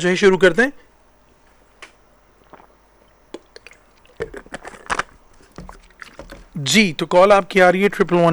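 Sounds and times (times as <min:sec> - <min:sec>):
speech: 0:00.0 - 0:00.9, 0:06.6 - 0:08.3
person drinking water: 0:02.3 - 0:06.6
swallowing: 0:02.3 - 0:06.6
crinkly wet handling: 0:03.3 - 0:06.6.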